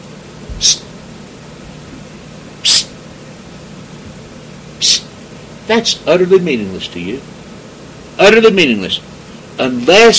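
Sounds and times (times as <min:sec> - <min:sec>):
person hissing to call someone: 0:00.6 - 0:00.9, 0:02.6 - 0:03.0, 0:04.8 - 0:05.1
speech: 0:00.6 - 0:00.9, 0:05.7 - 0:07.4, 0:08.2 - 0:10.1.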